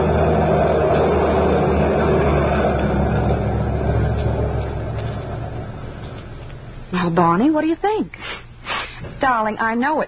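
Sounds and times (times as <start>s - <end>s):
heavy truck engine rumbling while maneuvering: 0.0s - 7.7s
speech: 7.1s - 10.0s.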